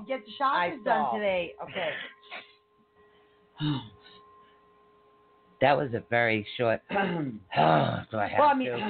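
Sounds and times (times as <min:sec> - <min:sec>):
speech: 0:00.1 - 0:02.5, 0:03.6 - 0:04.0, 0:05.6 - 0:08.8
gravelly throat clearing: 0:03.6 - 0:04.0, 0:06.9 - 0:08.1.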